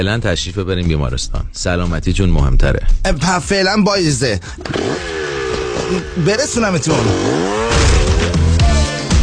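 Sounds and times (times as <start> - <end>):
speech: 0.0 - 5.2, 5.8 - 7.9
motorcycle engine revving: 4.6 - 9.2.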